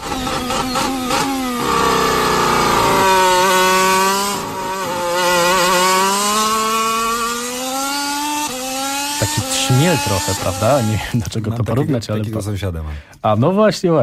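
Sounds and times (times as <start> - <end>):
racing car engines high-revving: 0.0 - 11.1
speech: 9.7 - 14.0.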